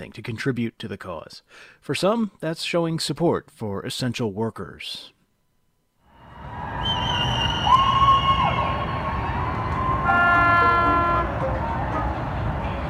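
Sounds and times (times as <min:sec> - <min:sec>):
speech: 0:00.0 - 0:05.2
neighborhood crowd cheering: 0:06.2 - 0:12.8
car horns honking: 0:10.0 - 0:11.4.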